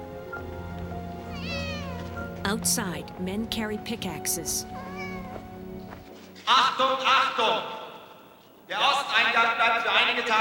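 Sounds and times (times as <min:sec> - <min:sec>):
kitten meowing: 0:01.3 - 0:02.2, 0:04.7 - 0:05.4
speech: 0:02.5 - 0:04.9, 0:06.5 - 0:07.8, 0:08.7 - 0:10.3.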